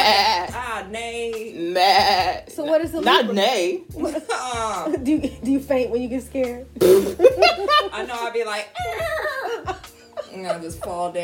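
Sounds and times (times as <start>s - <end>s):
goat bleating in a wavering cry: 0.0s - 0.6s, 1.6s - 2.5s
speech: 1.8s - 11.2s
laughter: 6.8s - 8.2s, 8.8s - 11.0s.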